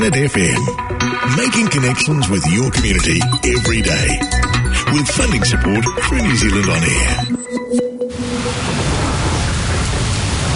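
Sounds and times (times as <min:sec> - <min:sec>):
speech: 0:00.0 - 0:07.9
heavy rain pouring down: 0:08.1 - 0:10.5.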